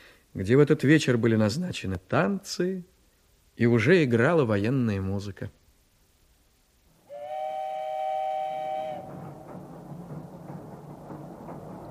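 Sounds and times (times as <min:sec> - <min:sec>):
speech: 0:00.4 - 0:03.0, 0:03.6 - 0:05.6
steam train whistle: 0:07.0 - 0:09.4
steam train wheels rumbling and clattering: 0:07.1 - 0:11.8.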